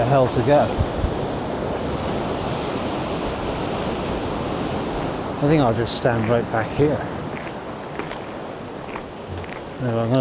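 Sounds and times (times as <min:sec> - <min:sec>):
gusty wind buffeting the microphone: 0:00.0 - 0:10.1
ocean waves smashing through a rocky gully in brutal conditions: 0:00.0 - 0:10.1
speech: 0:00.1 - 0:01.0, 0:05.4 - 0:07.2, 0:09.8 - 0:10.1.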